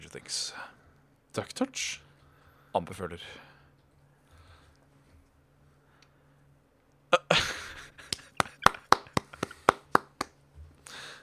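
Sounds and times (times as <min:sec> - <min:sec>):
speech: 0:00.2 - 0:02.0, 0:02.8 - 0:03.5, 0:07.2 - 0:07.5
laughter: 0:07.2 - 0:10.0
hand clapping from a couple of people: 0:08.0 - 0:10.4.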